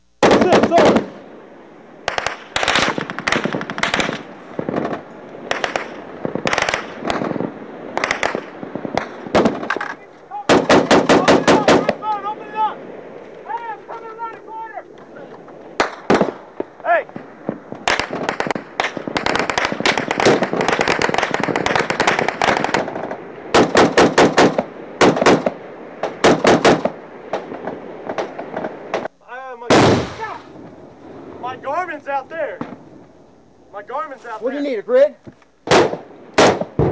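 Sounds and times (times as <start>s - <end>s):
automatic gunfire from a firefight in the Korengal valley played from a video: 0.2s - 1.2s, 2.1s - 12.2s, 15.8s - 29.1s, 29.7s - 30.5s, 35.6s - 36.8s
sharp single gunshots from a firefight in the Korengal valley: 0.2s - 1.2s, 2.1s - 12.2s, 15.2s - 29.1s, 29.7s - 30.6s, 35.6s - 36.8s
brief voices between volleys: 0.2s - 23.4s, 26.9s - 35.5s.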